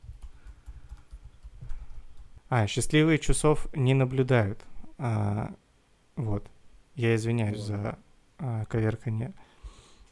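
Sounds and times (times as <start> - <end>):
typing on a computer keyboard: 0.0 - 2.3
speech: 2.5 - 5.6, 6.2 - 9.5.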